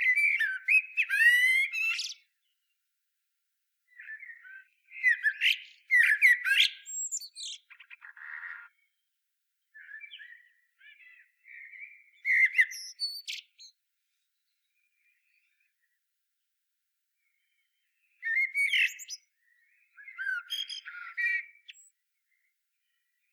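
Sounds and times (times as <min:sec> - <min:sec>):
common blackbird (Turdus merula) singing fluted whistles and squeaky twitters: 0:00.0 - 0:02.5, 0:03.9 - 0:09.0, 0:09.8 - 0:13.8, 0:17.3 - 0:22.0.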